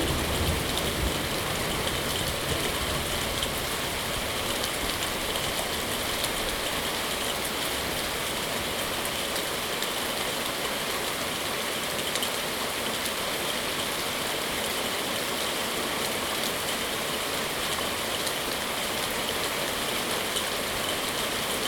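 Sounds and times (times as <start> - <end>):
low thunder rumble: 0.0 - 4.5
heavy rain pouring during a thunderstorm: 0.0 - 21.6.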